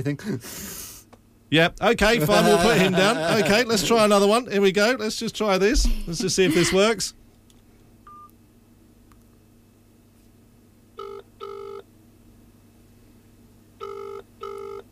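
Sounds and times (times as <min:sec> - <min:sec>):
speech: 0:00.0 - 0:00.9, 0:01.5 - 0:07.2
low steady hum: 0:00.0 - 0:14.9
laughter: 0:02.0 - 0:04.2, 0:05.8 - 0:07.0
phone ringing tone down the line during an outgoing call: 0:11.0 - 0:11.8, 0:13.8 - 0:14.9.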